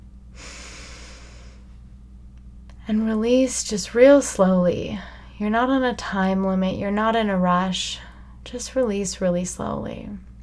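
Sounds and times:
low hum: 0.0 - 10.4
deep breath in: 0.4 - 1.7
speech: 2.9 - 10.3.

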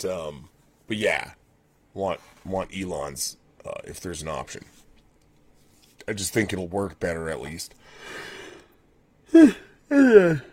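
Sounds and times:
speech: 0.0 - 1.4, 2.0 - 4.8, 6.1 - 8.4, 9.3 - 10.5
person yawning: 9.3 - 10.5.

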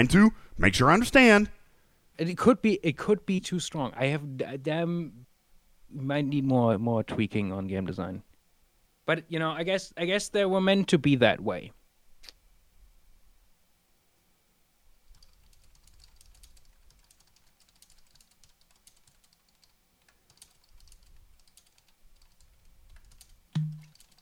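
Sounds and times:
speech: 0.0 - 1.6, 2.2 - 5.2, 5.9 - 8.3, 9.1 - 11.8
typing on a computer keyboard: 15.1 - 24.2.

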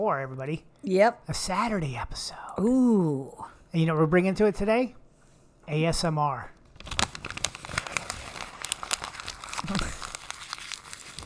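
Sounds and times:
speech: 0.0 - 5.0, 5.7 - 6.6
piece of paper being crumpled into a ball in a garage: 6.7 - 11.2.

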